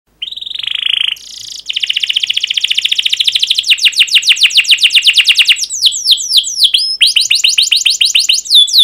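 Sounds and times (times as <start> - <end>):
canary song with buzzy note and fast dense chirping: 0.1 - 8.8.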